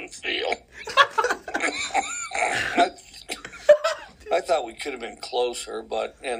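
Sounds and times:
speech: 0.1s - 1.1s, 4.8s - 6.3s
laughter: 0.8s - 4.2s
man coughing: 2.1s - 3.0s
man clearing throat: 2.3s - 3.0s.

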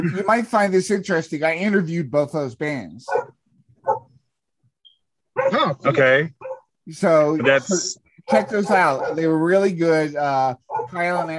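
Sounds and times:
speech: 0.0s - 3.3s, 5.6s - 11.3s
dog barking in background: 3.1s - 4.2s, 5.3s - 5.7s, 6.4s - 6.7s, 8.3s - 9.4s, 10.7s - 11.0s
faint high chirp: 4.8s - 5.2s.

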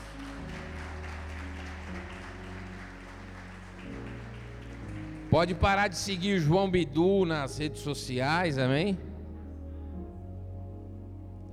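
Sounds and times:
crowd applause: 0.0s - 6.4s
sustained keyboard chords: 0.0s - 11.5s
speech: 5.3s - 9.1s.

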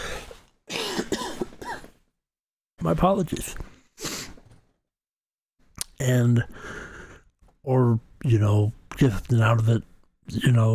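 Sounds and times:
person coughing: 0.7s - 2.0s
speech: 2.8s - 3.8s, 6.0s - 6.9s, 7.6s - 10.7s.

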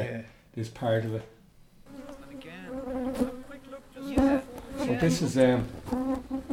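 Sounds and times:
speech: 0.0s - 1.4s, 4.9s - 6.3s
swarm of killer hornets buzzing: 1.9s - 6.5s.

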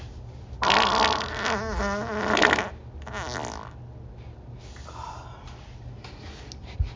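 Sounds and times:
long loud fart: 0.6s - 3.8s.

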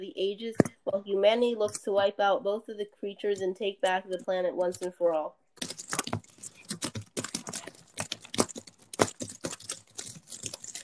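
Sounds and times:
speech: 0.0s - 5.4s
loud typing on a computer keyboard: 5.6s - 10.8s.

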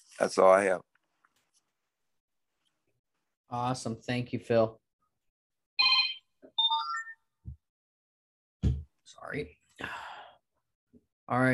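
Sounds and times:
speech: 0.2s - 0.9s, 3.5s - 4.8s, 9.2s - 10.0s, 11.3s - 11.5s
phone ringtone playing a short electronic melody: 5.8s - 7.2s.

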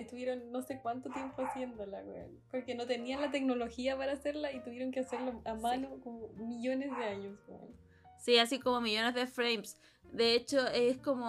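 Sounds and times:
speech: 0.0s - 11.2s
dog barking in the background: 1.1s - 1.8s, 5.1s - 5.4s, 6.8s - 7.3s.

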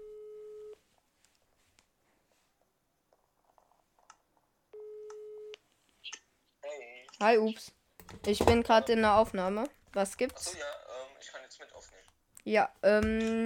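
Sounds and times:
outgoing call ringing tone beeps: 0.0s - 0.8s, 4.8s - 5.6s
speech: 7.2s - 11.4s, 12.4s - 13.4s.

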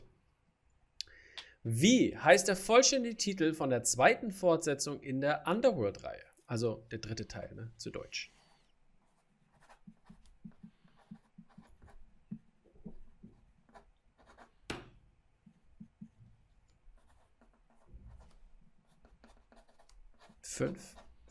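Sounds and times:
speech: 1.6s - 8.4s, 20.5s - 21.0s
pens scratching on paper: 8.3s - 14.6s, 16.9s - 21.2s.

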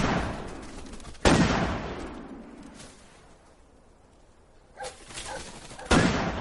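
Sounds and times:
shotgun blasts at birds during a pheasant hunt: 0.0s - 0.5s, 1.2s - 2.4s, 5.8s - 6.3s.

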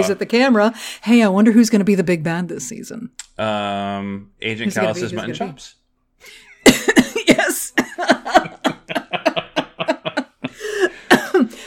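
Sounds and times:
speech: 0.0s - 6.4s
laughter: 6.3s - 11.1s
person coughing after choking on spit: 6.7s - 8.0s, 11.0s - 11.6s.

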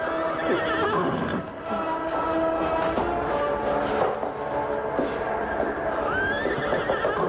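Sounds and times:
exhausted horses whinnying and neighing: 0.0s - 1.6s, 5.5s - 7.2s
horse hooves clopping and shuffling: 0.0s - 7.2s.

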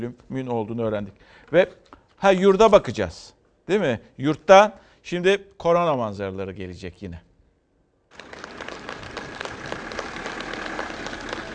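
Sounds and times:
speech: 0.0s - 7.3s
crowd applause for discharged patients: 8.1s - 11.5s.

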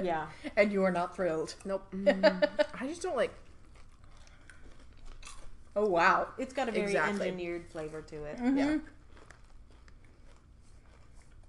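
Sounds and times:
speech: 0.0s - 3.4s, 5.8s - 9.0s
person biting and chewing hard sugar-coated candy: 3.4s - 5.6s, 8.8s - 11.4s.

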